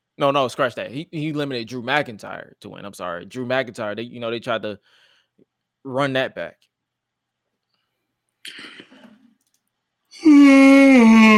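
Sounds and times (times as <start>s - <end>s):
speech: 0.2s - 6.7s, 8.4s - 8.9s, 10.2s - 11.3s
person yawning: 10.2s - 11.3s.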